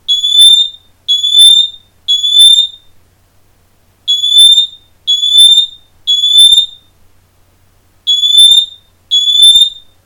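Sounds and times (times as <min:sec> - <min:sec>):
ELRO Cavius mini design smoke alarm beeping: 0:00.1 - 0:02.9, 0:04.1 - 0:06.9, 0:08.1 - 0:10.0.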